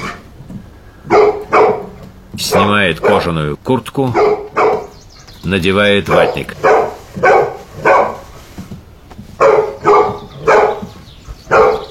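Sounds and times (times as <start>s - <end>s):
tied-up dog barking in a cartoon scene: 1.0s - 3.3s, 4.1s - 5.0s, 6.1s - 8.3s, 9.4s - 11.8s
speech: 2.4s - 4.3s, 5.4s - 6.7s.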